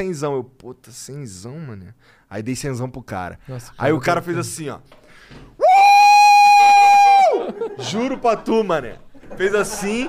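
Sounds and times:
speech: 0:00.0 - 0:05.6, 0:07.5 - 0:10.0
man imitating a loud excited scream: 0:05.6 - 0:07.5
laughter: 0:07.3 - 0:10.0.

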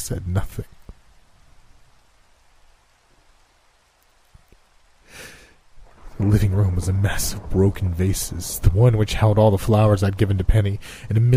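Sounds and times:
steady rain falling: 0:00.0 - 0:11.3
speech: 0:00.1 - 0:00.8, 0:06.2 - 0:11.3
sharp loud burst of noise: 0:05.0 - 0:11.2
low thumps: 0:05.8 - 0:10.8.

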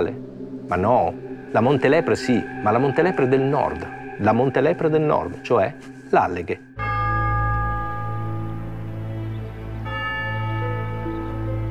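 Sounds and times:
speech: 0:00.0 - 0:06.7
church bells tolling with deep resonant strokes: 0:00.0 - 0:11.7.

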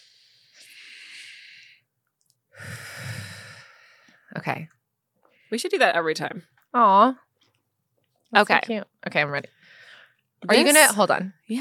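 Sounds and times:
slow deliberate box breathing: 0:00.0 - 0:01.9, 0:02.5 - 0:04.3, 0:09.6 - 0:10.3
speech: 0:04.4 - 0:04.8, 0:05.5 - 0:07.2, 0:08.3 - 0:09.6, 0:10.4 - 0:11.5.

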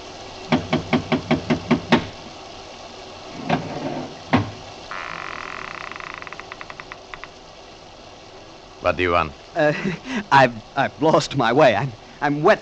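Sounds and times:
faint steady rattling hum: 0:00.3 - 0:12.6
heavy metal object knocking on a door: 0:00.5 - 0:02.1, 0:03.5 - 0:04.6
speech: 0:08.8 - 0:12.6
laughter: 0:09.6 - 0:10.3.

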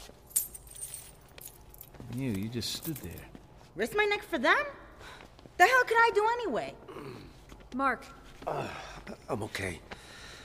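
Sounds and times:
keys jangling as they are handed back to a prison guard: 0:00.0 - 0:03.4
speech: 0:02.1 - 0:09.9.

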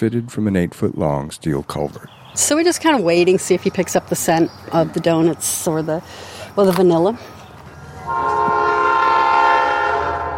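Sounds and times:
speech: 0:00.0 - 0:07.4, 0:08.1 - 0:08.6
train passing: 0:02.3 - 0:10.3
train horn blaring: 0:08.0 - 0:10.3.

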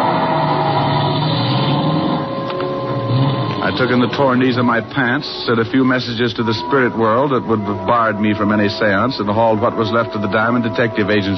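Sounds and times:
car engine driving away: 0:00.0 - 0:04.6
speech: 0:03.7 - 0:11.3.

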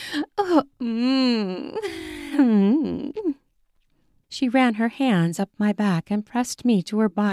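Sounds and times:
woman moaning breathily: 0:00.0 - 0:03.4
speech: 0:00.1 - 0:01.5, 0:04.4 - 0:07.3.

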